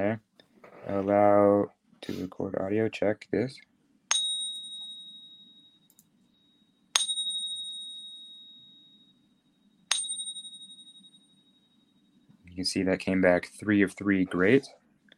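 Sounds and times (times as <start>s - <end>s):
speech: 0.0s - 0.3s, 0.9s - 3.7s, 12.6s - 14.8s
faint low hum: 0.0s - 15.1s
American Silver Eagle silver coin ringing when tapped: 4.1s - 9.1s, 9.9s - 11.8s.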